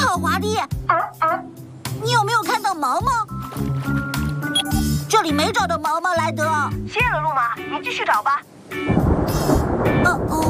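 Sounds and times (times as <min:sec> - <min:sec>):
speech: 0:00.4 - 0:04.1, 0:05.1 - 0:10.4
loud low rumble of thunder as a storm approaches: 0:08.9 - 0:10.4.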